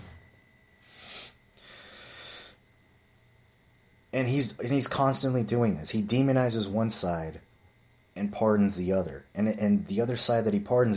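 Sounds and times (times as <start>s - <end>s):
breathy nasal sniffs from a person with nasal problems: 0.8s - 2.6s
speech: 4.1s - 7.5s, 8.2s - 10.9s.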